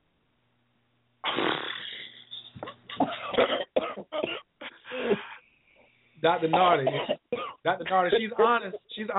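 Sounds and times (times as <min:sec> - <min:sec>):
person smoking a cigarette coughing raspily: 0:01.3 - 0:05.4, 0:06.4 - 0:09.0
speech: 0:06.2 - 0:09.1.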